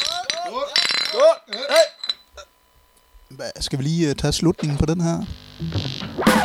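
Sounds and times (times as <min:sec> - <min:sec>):
drinking glasses clinking in a toast: 0:00.0 - 0:02.5
speech: 0:03.4 - 0:06.4.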